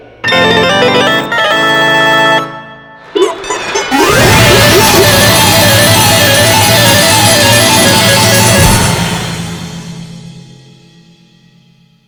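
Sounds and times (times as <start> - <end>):
voting slots end success sound effect: 0.3 - 9.6.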